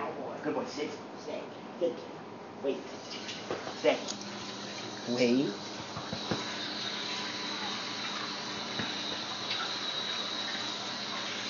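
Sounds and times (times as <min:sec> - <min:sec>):
speech: 0:00.4 - 0:04.3, 0:05.0 - 0:05.7
water streaming from a tap for dogs to drink: 0:03.0 - 0:11.4.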